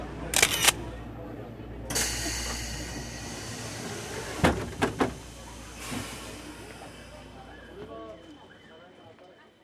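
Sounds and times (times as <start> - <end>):
steam locomotive train rumbling hiss inside carriage in Saitama Japan: 1.8 - 8.0.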